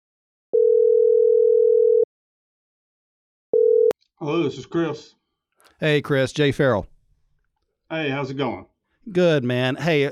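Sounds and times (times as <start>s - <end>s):
telephone ringing tone while placing a call: 0.6s - 2.1s, 3.5s - 3.9s
speech: 4.2s - 6.9s, 7.9s - 10.1s.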